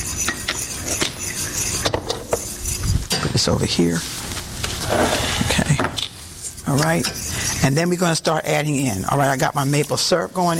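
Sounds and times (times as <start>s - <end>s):
utensil stirring a mixture in a pot: 0.0s - 10.5s
speech: 3.4s - 4.3s, 6.7s - 10.5s.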